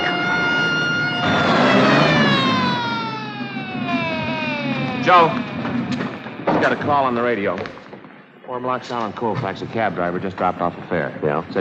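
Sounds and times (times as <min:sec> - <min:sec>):
ambulance siren wailing: 0:00.0 - 0:07.4
low traffic rumble: 0:00.1 - 0:07.5
speech: 0:05.1 - 0:05.6, 0:06.6 - 0:07.8, 0:08.5 - 0:11.5.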